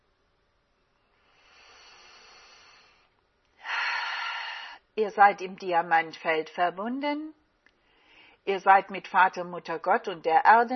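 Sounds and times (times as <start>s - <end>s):
breathing in and out during a guided meditation exercise: 1.0s - 5.0s, 7.7s - 8.5s
speech: 5.0s - 7.4s, 8.4s - 10.7s.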